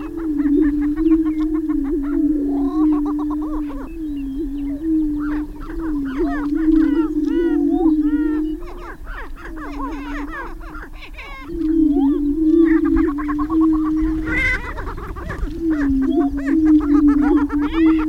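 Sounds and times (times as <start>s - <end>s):
greater prairie chickens cackling and giving yelping whoops: 0.0s - 18.0s.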